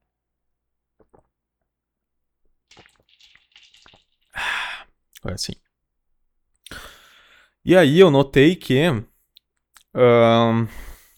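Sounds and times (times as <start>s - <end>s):
soft wet mouth sounds: 1.0s - 1.3s, 2.6s - 5.3s
small slurping sips of whisky: 2.7s - 4.9s
loud breathy exhale of satisfaction: 4.4s - 4.9s, 6.7s - 7.6s, 10.7s - 11.1s
speech: 5.3s - 5.6s, 7.7s - 9.1s, 10.0s - 10.8s.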